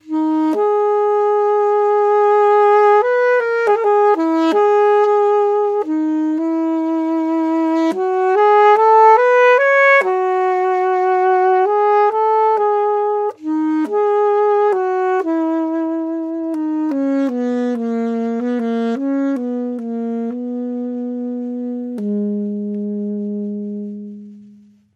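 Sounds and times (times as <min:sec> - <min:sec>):
Jupiter JAS700Q alto sax: 0:00.0 - 0:24.9.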